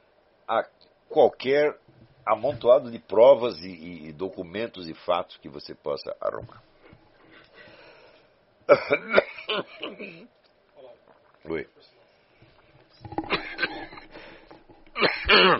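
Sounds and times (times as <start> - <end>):
speech: 0.5 - 6.7, 8.7 - 10.4, 11.4 - 12.0, 15.3 - 15.5
person coughing: 8.7 - 10.3, 13.1 - 14.1, 15.0 - 15.5
throat clearing: 13.1 - 14.1, 15.0 - 15.5.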